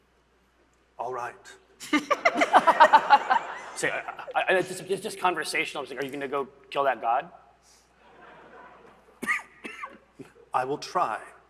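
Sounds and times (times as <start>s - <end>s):
speech: 1.1s - 3.2s, 3.8s - 7.8s, 10.6s - 11.3s
laughter: 1.8s - 5.0s, 8.0s - 9.6s
person coughing sharp and breathy: 9.2s - 10.4s.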